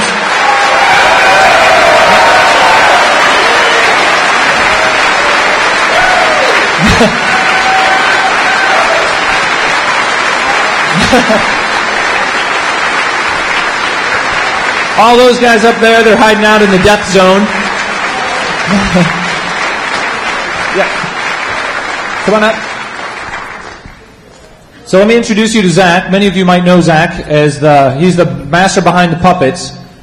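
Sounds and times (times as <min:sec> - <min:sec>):
scattered audience cheers and whoops: 0:00.0 - 0:11.0
large audience applauding: 0:00.0 - 0:24.2
laughter: 0:06.4 - 0:07.8, 0:10.4 - 0:12.4, 0:18.0 - 0:21.1
speech: 0:07.0 - 0:07.2, 0:11.1 - 0:11.6, 0:15.0 - 0:17.6, 0:18.7 - 0:19.2, 0:20.8 - 0:21.0, 0:22.3 - 0:22.7, 0:24.9 - 0:29.8.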